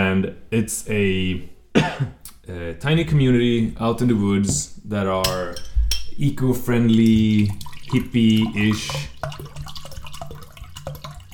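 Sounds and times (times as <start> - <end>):
speech: 0.2 - 9.6
liquid being poured slowly into a container: 6.7 - 11.3.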